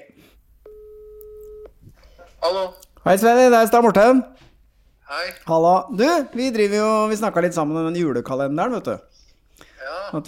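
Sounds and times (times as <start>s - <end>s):
telephone ringing tone while calling: 0.7s - 1.7s
speech: 2.4s - 4.4s, 5.1s - 9.2s.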